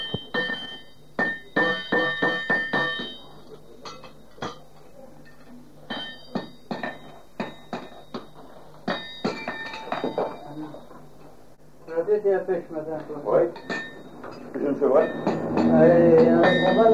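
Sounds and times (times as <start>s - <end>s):
hammer striking anvil: 0.0s - 4.6s, 5.8s - 10.4s, 13.5s - 16.9s.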